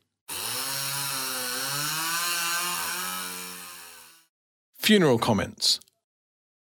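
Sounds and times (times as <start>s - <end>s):
chainsaw starting up and running: 0.3s - 4.3s
speech: 4.9s - 5.9s.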